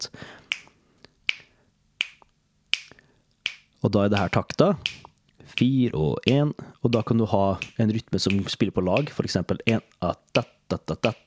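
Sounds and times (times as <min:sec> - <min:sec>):
crisp finger snaps at a steady beat: 0:00.4 - 0:09.1
speech: 0:03.8 - 0:05.0, 0:05.6 - 0:11.2.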